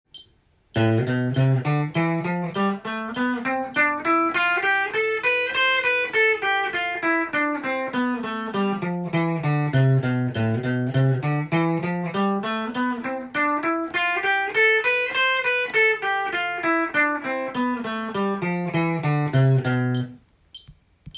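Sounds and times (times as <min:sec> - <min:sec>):
easy guitar picking: 0:00.8 - 0:20.2.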